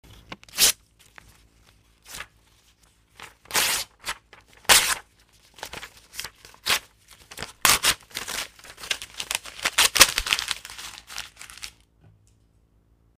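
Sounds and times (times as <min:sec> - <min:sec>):
paper tearing: 0:00.5 - 0:00.8, 0:03.2 - 0:11.8.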